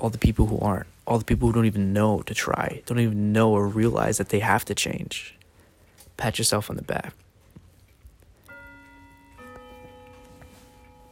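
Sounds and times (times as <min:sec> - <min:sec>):
speech: 0:00.0 - 0:05.4, 0:06.2 - 0:07.2
low noise: 0:00.0 - 0:11.1
alarm clock going off with electronic tones in several pitches: 0:08.4 - 0:11.1.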